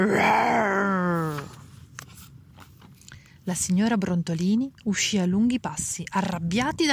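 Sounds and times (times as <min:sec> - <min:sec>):
human voice imitating a disappointed lion roaring very loudly in a library: 0:00.0 - 0:01.6
speech: 0:03.5 - 0:06.9.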